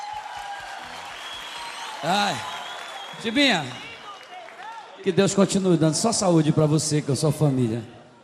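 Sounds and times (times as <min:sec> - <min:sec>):
audience applause: 0:00.0 - 0:05.9
speech: 0:02.0 - 0:02.5, 0:03.1 - 0:03.8, 0:05.0 - 0:08.0.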